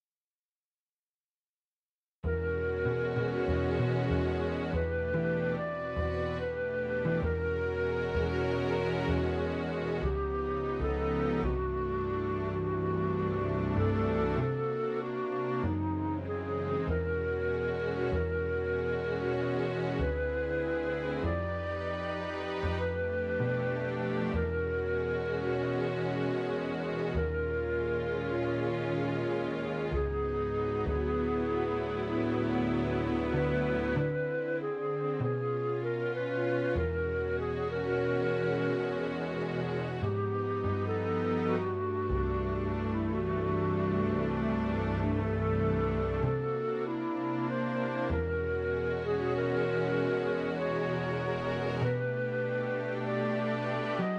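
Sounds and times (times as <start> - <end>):
bass: 2.2 - 54.1
flute: 2.2 - 54.1.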